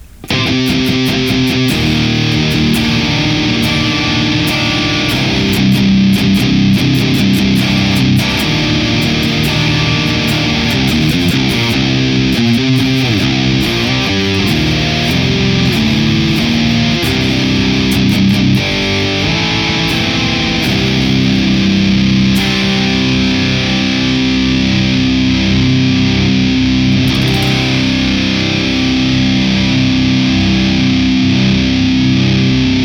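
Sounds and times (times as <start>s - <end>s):
heavily distorted electric guitar through amp plugin playing fast chugging riffs: 0.0s - 32.8s.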